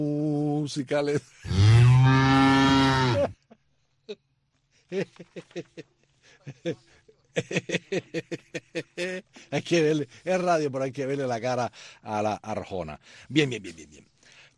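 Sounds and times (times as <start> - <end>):
speech: 0.7 - 2.4, 4.9 - 5.8, 6.6 - 6.9, 9.6 - 14.5
single long loud cow moo: 1.5 - 3.3
laughter: 4.9 - 10.0.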